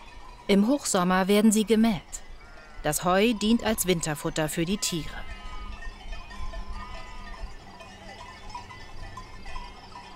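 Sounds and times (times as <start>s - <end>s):
low rumble of wind: 0.0s - 10.1s
speech: 0.5s - 2.2s, 2.8s - 5.3s
sheep bleating outdoors: 2.3s - 5.9s.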